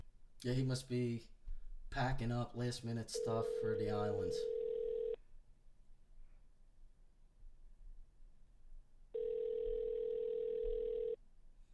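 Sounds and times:
speech: 0.4s - 4.6s
telephone line tone as a call is patched through: 3.2s - 5.2s, 9.2s - 11.2s.

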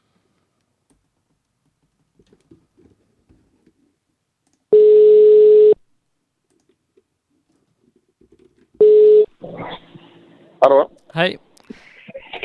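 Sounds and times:
steady electronic telephone tones: 4.7s - 5.8s, 8.8s - 9.3s
speech: 10.6s - 11.5s.

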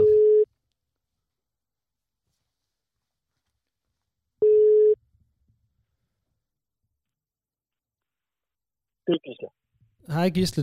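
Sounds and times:
telephone ringback tone on an outgoing call: 4.4s - 5.0s
speech: 9.1s - 10.6s.

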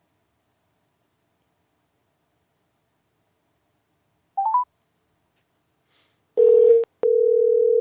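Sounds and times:
quick electronic beeps of an outgoing phone call: 4.4s - 4.6s
steady clear telephone tone on an outgoing call: 4.4s - 4.6s, 6.4s - 7.7s.

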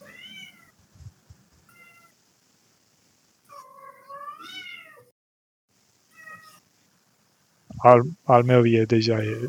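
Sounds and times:
cat meowing: 0.0s - 0.8s, 1.7s - 2.2s, 3.5s - 5.1s, 6.1s - 6.6s, 9.2s - 9.4s
speech: 7.8s - 9.4s.

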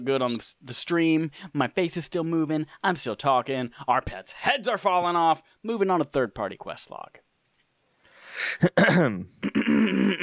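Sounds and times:
speech: 0.0s - 7.2s, 8.4s - 10.2s
person clearing throat: 8.6s - 10.2s.

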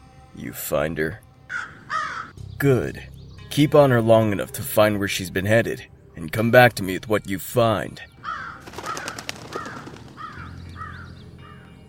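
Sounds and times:
speech: 0.4s - 1.8s, 2.6s - 8.1s
crows cawing: 1.5s - 2.4s, 8.2s - 11.8s.

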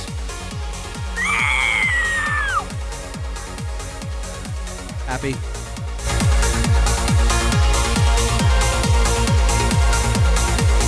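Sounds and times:
music with thumping beat: 0.0s - 10.8s
person imitating a pterodactyl screech: 1.2s - 2.7s
speech: 5.1s - 5.5s.

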